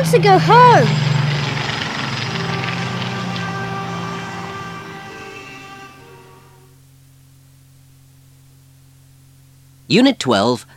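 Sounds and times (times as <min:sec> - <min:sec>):
speech: 0:00.0 - 0:01.0, 0:09.9 - 0:10.7
airplane flying overhead: 0:00.0 - 0:06.8.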